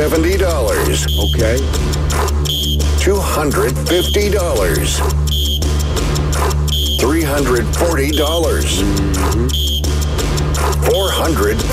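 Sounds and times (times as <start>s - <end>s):
speech: 0.0s - 5.5s, 7.0s - 9.7s, 10.8s - 11.7s
loud harsh electronic game show buzzer: 0.8s - 1.8s, 2.4s - 3.0s, 5.2s - 10.7s.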